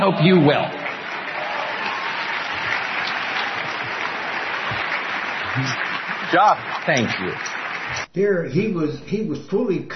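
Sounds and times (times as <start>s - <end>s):
speech: 0.0s - 0.8s, 5.6s - 9.9s
large crowd applauding: 0.0s - 8.1s.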